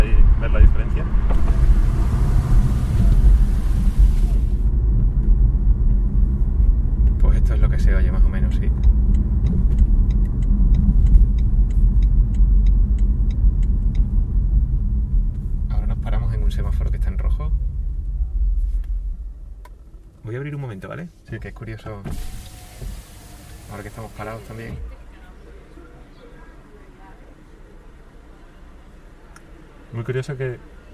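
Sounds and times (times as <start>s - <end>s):
road rumble inside an electric car driving at about 40 km/h with windows closed: 0.0s - 30.9s
brief hiss: 1.3s - 4.7s, 22.1s - 25.0s
speech: 21.6s - 23.0s, 23.7s - 24.9s, 29.9s - 30.8s.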